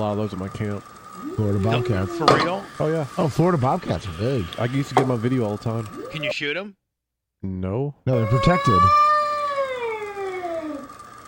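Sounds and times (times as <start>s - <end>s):
speech: 0.0s - 6.8s, 7.4s - 9.1s
cat caterwauling with a drawn-out yowl: 1.2s - 2.6s, 8.1s - 10.9s.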